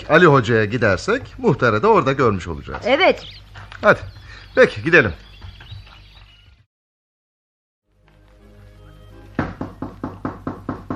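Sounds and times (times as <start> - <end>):
speech: 0.0 - 5.3
firm knocking on a door: 9.4 - 10.9.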